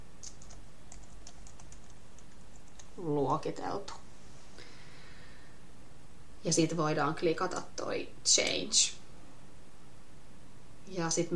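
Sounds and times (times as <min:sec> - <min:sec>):
low hiss: 0:00.0 - 0:11.3
typing a name on a computer keyboard: 0:00.2 - 0:03.0
speech: 0:03.0 - 0:04.0, 0:06.4 - 0:09.0, 0:10.9 - 0:11.3.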